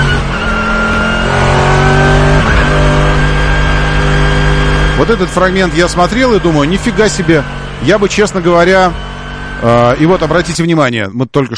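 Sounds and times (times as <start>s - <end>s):
Mercedes GT race car overtaking a Logan in a 24-hour endurance race: 0.0s - 10.7s
speech: 5.0s - 11.5s.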